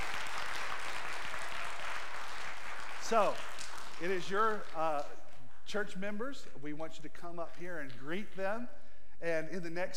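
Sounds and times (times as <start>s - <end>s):
audience applause: 0.0s - 5.1s
speech: 3.1s - 9.9s.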